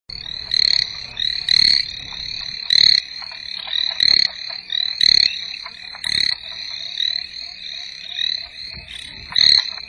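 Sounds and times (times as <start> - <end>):
Hyla chinensis calling: 0.1 - 9.8.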